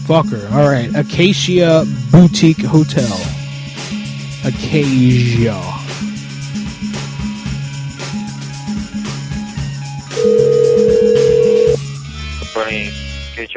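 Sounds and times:
speech: 0.1s - 3.3s, 4.5s - 5.8s
telephone call to a hotel ringing with low alternating electronic tones: 10.2s - 11.8s.

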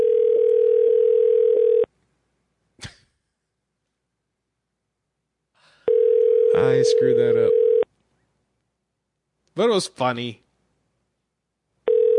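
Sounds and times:
telephone dial tone while calling a store back: 0.0s - 1.9s, 5.9s - 6.6s, 7.5s - 7.8s, 11.9s - 12.1s
soft sigh-like breath: 5.5s - 6.0s
speech: 6.9s - 7.6s, 9.6s - 10.4s.

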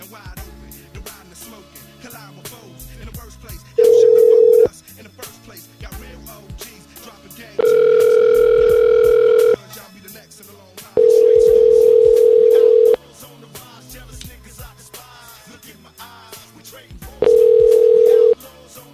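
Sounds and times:
telephone tones while a call is placed: 3.8s - 4.7s, 7.6s - 9.6s, 11.0s - 13.0s, 17.2s - 18.4s.

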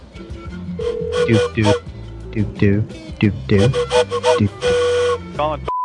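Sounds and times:
shrill train whistle blasts: 0.8s - 1.8s, 3.5s - 5.3s
speech: 1.3s - 5.7s.

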